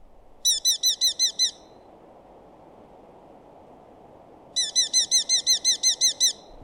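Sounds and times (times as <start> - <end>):
steady low hiss: 0.0 - 6.6
Eurasian hobby calling in fast shrill bursts: 0.4 - 1.8, 4.6 - 6.5.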